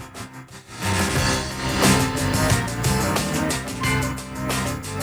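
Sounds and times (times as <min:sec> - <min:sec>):
theremin with PWM volume control: 0:01.0 - 0:05.0.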